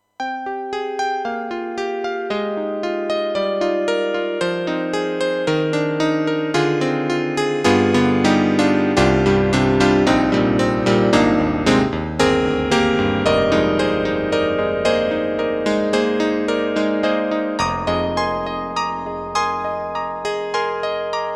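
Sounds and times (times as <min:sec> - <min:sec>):
electric grand piano: 0:00.0 - 0:21.3.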